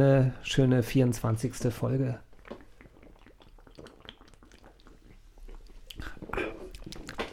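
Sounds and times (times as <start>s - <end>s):
speech: 0.0s - 2.3s
people sipping and swallowing beer: 2.3s - 7.3s.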